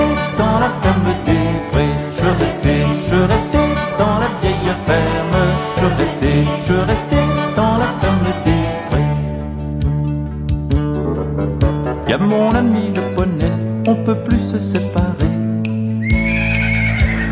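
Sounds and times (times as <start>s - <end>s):
steady musical backing: 0.0s - 17.3s
horse whinnying: 16.0s - 17.3s.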